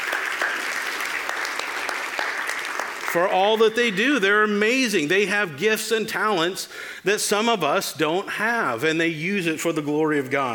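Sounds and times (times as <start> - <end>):
audience applause for a church praise band and orchestra: 0.0 - 3.3
speech: 3.1 - 10.5.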